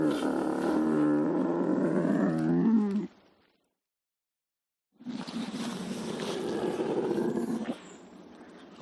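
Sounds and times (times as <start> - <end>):
lynx growling: 0.0 - 3.2, 5.1 - 8.0.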